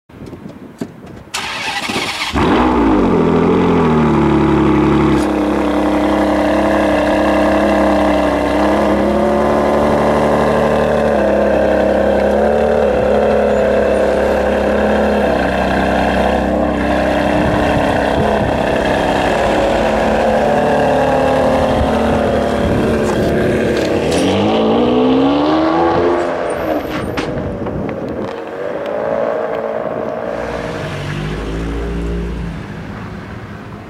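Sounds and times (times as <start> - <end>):
Ferrari 599 GTB Fiorano engine: 1.4 - 33.8.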